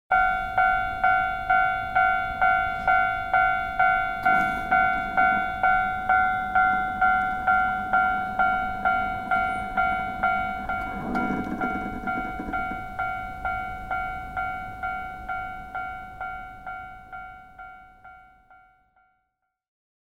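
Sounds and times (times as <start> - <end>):
train: 0.1 - 19.6.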